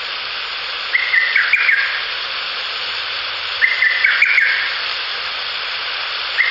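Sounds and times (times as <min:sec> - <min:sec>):
steady hiss: 0:00.0 - 0:06.4
lesser cuckoo call: 0:00.9 - 0:02.0, 0:03.6 - 0:04.8.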